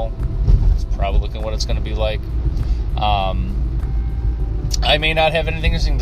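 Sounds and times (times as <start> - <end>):
road rumble in a moving car's interior: 0.0 - 5.9
speech: 1.4 - 3.5, 4.7 - 5.9.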